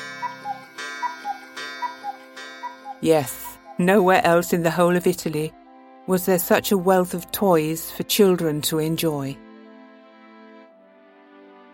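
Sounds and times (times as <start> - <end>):
cuckoo clock ticking in a toy store: 0.0 - 5.5
speech: 3.0 - 9.5.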